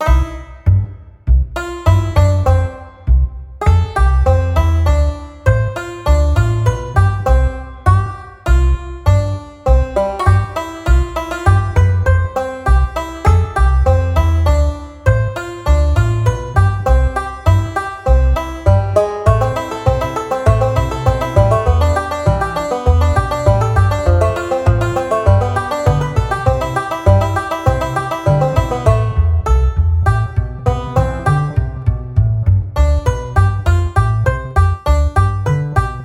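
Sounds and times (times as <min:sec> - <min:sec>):
heartwarming light country music on banjo: 0:00.0 - 0:36.0.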